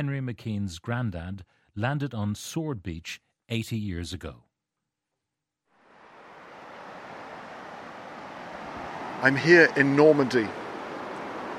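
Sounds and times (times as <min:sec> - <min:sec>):
speech: 0:00.0 - 0:04.5, 0:09.2 - 0:10.6
ocean waves washing onto a beach in Normandy: 0:05.8 - 0:11.5.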